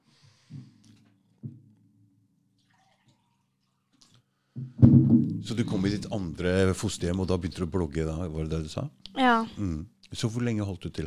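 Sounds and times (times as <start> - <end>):
water being poured into a glass: 2.6 - 3.8
person sipping water from a glass: 2.6 - 4.3
speech: 5.4 - 11.0.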